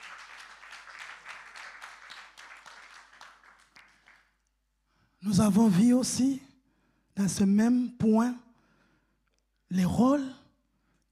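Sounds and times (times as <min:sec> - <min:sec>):
church congregation clapping in praise: 0:00.0 - 0:04.5
speech: 0:05.2 - 0:06.5, 0:07.2 - 0:08.4, 0:09.7 - 0:10.4.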